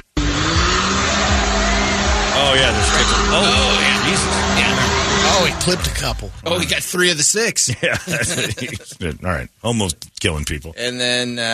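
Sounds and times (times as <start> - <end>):
dune buggy engine revving: 0.0 - 6.7
laughter: 2.4 - 6.8, 7.6 - 9.2
speech: 2.5 - 11.5.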